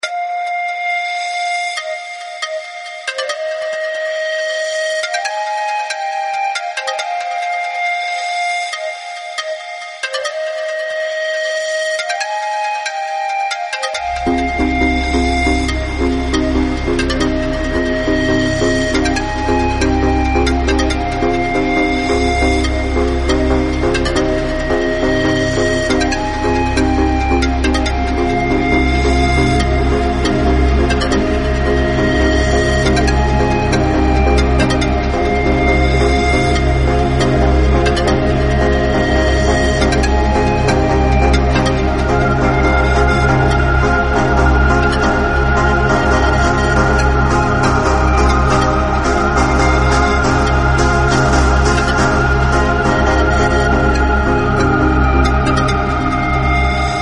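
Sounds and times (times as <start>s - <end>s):
pan flute: 0.0s - 56.9s.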